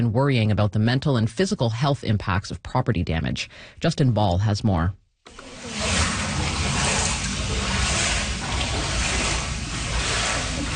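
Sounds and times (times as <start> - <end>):
speech: 0.0 - 5.6
water sloshing and splashing in a flooded basement: 5.3 - 10.7.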